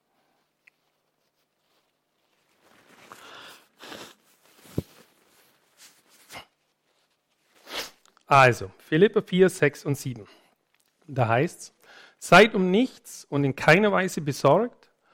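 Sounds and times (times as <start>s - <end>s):
sniffing: 3.1s - 4.3s
preacher blowing nose: 3.1s - 4.6s, 7.6s - 8.0s
speech: 8.3s - 10.4s, 11.1s - 14.8s.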